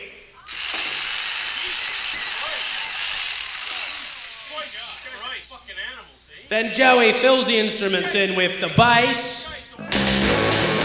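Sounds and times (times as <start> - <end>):
power drill whining: 0.4 - 5.4
speech: 5.5 - 9.4.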